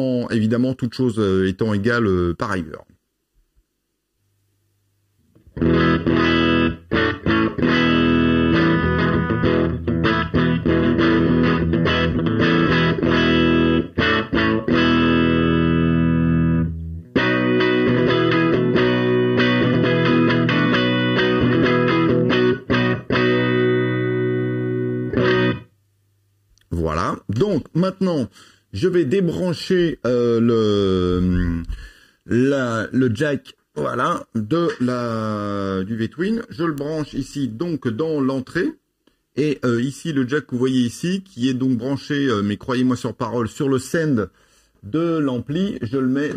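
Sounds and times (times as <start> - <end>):
speech: 0.0 - 2.9, 27.3 - 38.8, 39.4 - 46.3
heavily distorted fuzzy electric guitar through a preamp playing chords: 5.4 - 25.8.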